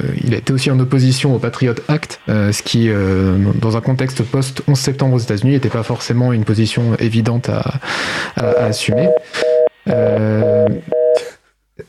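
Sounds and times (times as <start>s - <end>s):
hissy telephone line noise: 0.0s - 10.9s
speech: 0.3s - 11.0s
electronic telephone beeps from a dropped call connection: 8.5s - 11.2s.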